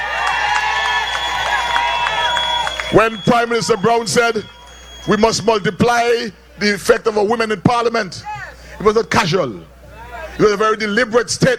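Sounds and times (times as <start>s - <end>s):
sharp bursts of clapping: 0.0s - 5.1s
crowd at a political gathering cheering for an election result: 0.0s - 6.6s
speech: 2.9s - 9.7s, 10.4s - 11.5s.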